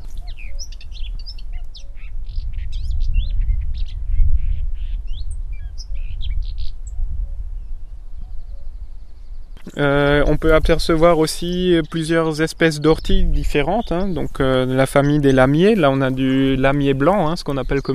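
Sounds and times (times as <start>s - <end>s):
small birds chirping in a hedgerow: 0.0s - 7.0s, 7.6s - 17.9s
low outdoor rumble: 9.6s - 17.9s
speech: 9.8s - 17.9s.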